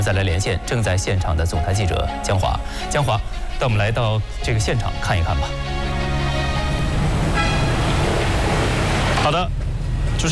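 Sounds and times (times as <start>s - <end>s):
speech: 0.0s - 5.8s, 9.2s - 9.6s, 10.2s - 10.3s
trucks driving in and out of market: 5.7s - 10.3s.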